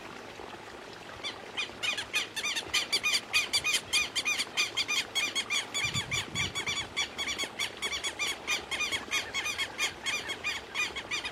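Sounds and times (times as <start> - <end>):
southern lapwing calling: 1.8 - 11.3.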